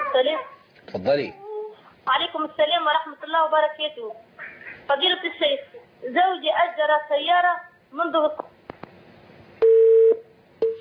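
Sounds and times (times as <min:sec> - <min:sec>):
speech: 0:00.1 - 0:01.4, 0:02.0 - 0:08.5
telephone line beeps after a cut-off call: 0:09.6 - 0:10.7.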